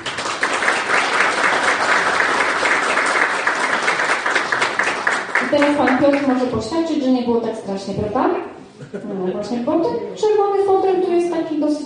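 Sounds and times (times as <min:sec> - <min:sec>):
audience applause: 0:00.0 - 0:06.5
speech: 0:05.6 - 0:11.8
laughter: 0:08.7 - 0:10.2.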